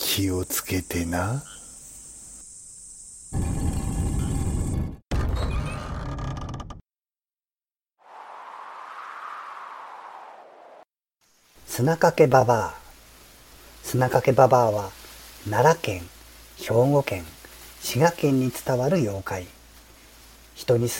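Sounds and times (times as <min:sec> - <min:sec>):
speech: 0:00.2 - 0:01.6, 0:11.8 - 0:12.8, 0:13.8 - 0:19.6, 0:20.6 - 0:20.9
door creaking slowly open: 0:03.4 - 0:06.8.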